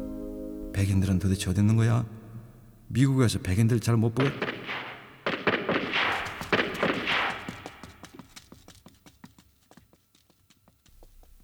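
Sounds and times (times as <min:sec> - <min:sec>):
speech: 0:00.8 - 0:02.2, 0:02.9 - 0:04.5
gunshots at night in Koreatown: 0:04.0 - 0:08.2.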